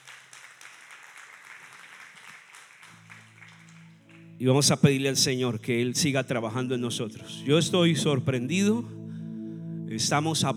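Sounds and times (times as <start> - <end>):
audience applauding: 0.0 - 4.4
low sustained keyboard tones: 3.6 - 10.5
speech: 4.4 - 9.0, 10.0 - 10.5.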